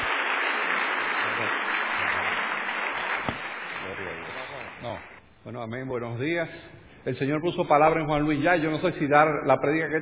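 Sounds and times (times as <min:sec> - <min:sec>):
audience applause: 0:00.0 - 0:05.1
speech: 0:05.5 - 0:10.0.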